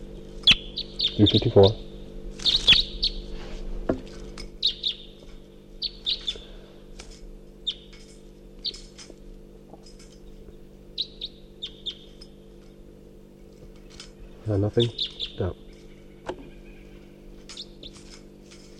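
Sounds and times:
steady low hum: 0.0s - 18.7s
short high-pitched wild bird song phrases: 0.4s - 3.2s, 4.6s - 5.2s, 5.8s - 6.6s, 7.6s - 7.9s, 11.0s - 12.2s, 13.8s - 18.0s
speech: 1.2s - 1.9s, 14.5s - 15.6s.

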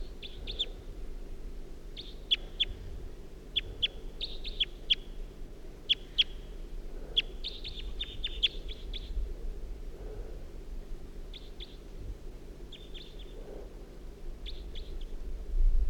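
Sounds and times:
low steady rumble: 0.0s - 15.8s
wild bird chirping: 0.1s - 0.8s, 2.0s - 2.8s, 3.6s - 5.2s, 5.9s - 6.6s, 7.2s - 9.2s, 11.3s - 11.8s, 12.7s - 13.5s, 14.4s - 15.2s.

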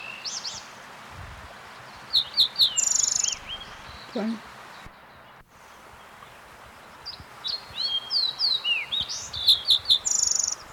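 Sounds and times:
Fox Sparrow song with whistled slurs and fast trill: 0.0s - 0.7s, 1.8s - 4.2s, 7.0s - 10.7s
faint steady background hiss: 0.0s - 10.7s
speech: 4.2s - 4.5s.

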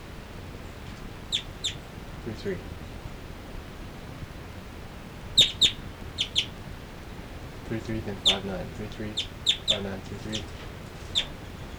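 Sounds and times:
low hiss: 0.0s - 11.7s
two birds chirping while flying from perch to perch: 0.4s - 11.7s
speech: 2.3s - 2.8s, 7.7s - 10.6s.

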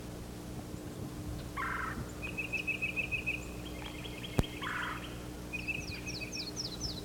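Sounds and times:
steady low hum: 0.0s - 7.0s
yellow-throated warbler singing: 1.6s - 7.0s.

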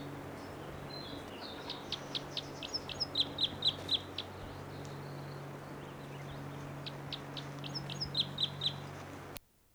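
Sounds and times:
bird chirping in a tree above a camp: 0.0s - 9.4s
steady low hum: 0.0s - 9.4s.

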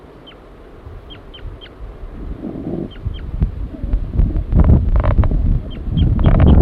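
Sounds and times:
gusty low wind rumble: 0.0s - 6.5s
male bird giving flight calls near its nest: 0.0s - 6.5s.

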